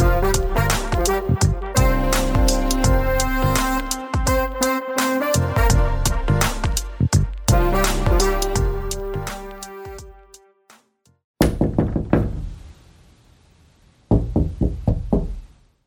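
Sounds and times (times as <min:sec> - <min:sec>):
short burst of tonal music: 0:00.0 - 0:10.4
firm knocks on a wooden door: 0:11.4 - 0:12.5, 0:14.1 - 0:15.5.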